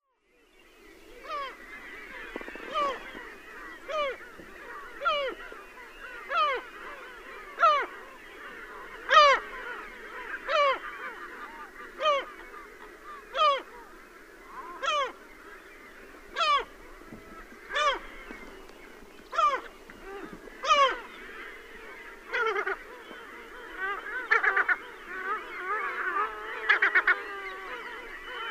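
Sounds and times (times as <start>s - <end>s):
Larus fuscus barabensis gull calls: 1.1s - 28.4s.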